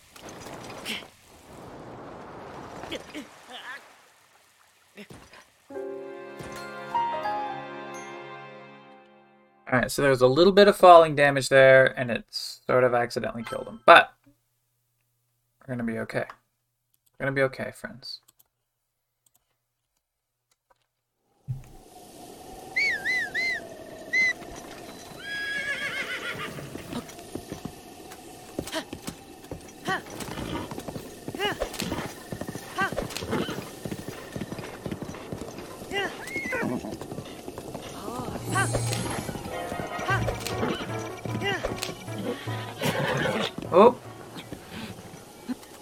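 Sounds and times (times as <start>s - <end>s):
speech: 9.8s - 14.1s, 15.7s - 16.4s, 17.2s - 18.2s, 43.8s - 44.0s
horse whinnying: 22.8s - 27.8s, 28.6s - 43.8s
horse hooves clip-clopping: 23.4s - 45.7s.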